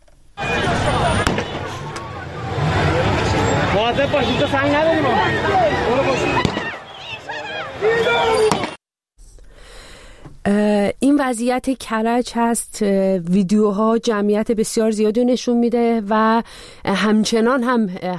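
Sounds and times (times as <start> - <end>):
people shouting: 0.4 - 8.8
roar of a large protesting crowd: 0.4 - 8.8
gunshots fired at a protesting crowd: 0.7 - 2.0, 6.4 - 6.8, 8.5 - 8.8
speech: 4.0 - 6.4, 11.2 - 18.1.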